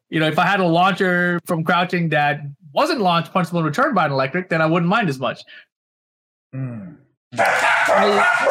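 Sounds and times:
speech: 0.1s - 5.7s, 6.5s - 8.5s
dogs barking: 7.4s - 8.5s.

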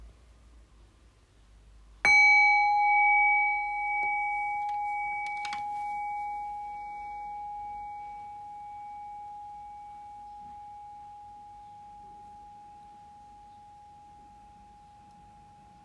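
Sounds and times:
single bell struck in a quiet room: 2.1s - 9.7s.

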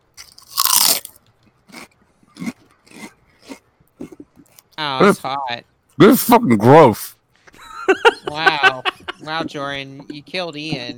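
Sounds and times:
crunching and chewing food: 0.0s - 4.8s
speech: 4.8s - 7.1s, 8.3s - 10.9s
laughter: 7.5s - 10.9s.

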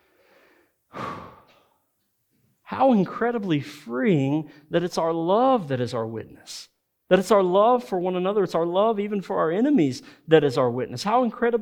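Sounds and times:
church congregation taking a deep breath and exhaling during a sermon: 0.0s - 1.8s
speech: 2.8s - 11.6s.

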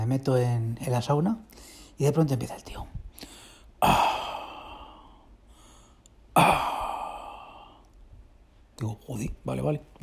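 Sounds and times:
speech: 0.1s - 4.1s, 8.8s - 10.0s
voice imitating a man's heavy breathing in a sauna: 3.3s - 7.9s.

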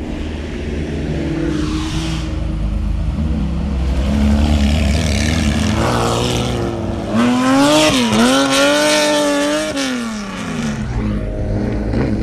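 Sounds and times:
Porsche 911 sports cars driving past on an Apennine road: 0.0s - 12.2s
revving Porsche 911 engine howls: 3.1s - 12.2s.

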